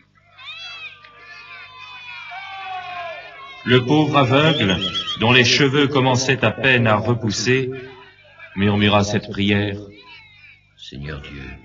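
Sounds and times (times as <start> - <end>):
laughter: 0.0 - 10.6
dense crowd jeering and shouting at a festival: 0.0 - 11.6
steady low hum: 2.2 - 11.6
speech: 3.6 - 7.9, 8.6 - 10.1, 10.8 - 11.6.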